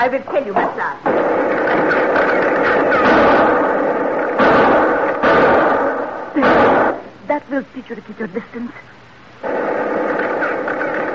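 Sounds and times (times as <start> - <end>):
speech: 0.0 - 3.2, 7.4 - 9.5
gunfire barrage in a commando firefight: 1.0 - 7.2, 9.4 - 11.1.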